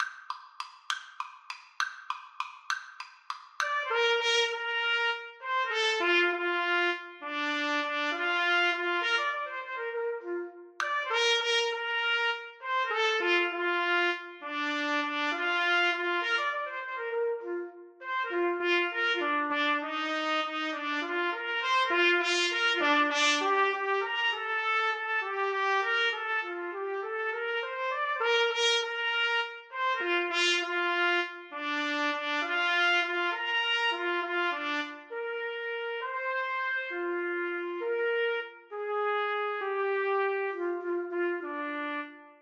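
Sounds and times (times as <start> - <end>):
trumpet duet playing a minuet: 3.6 - 42.4.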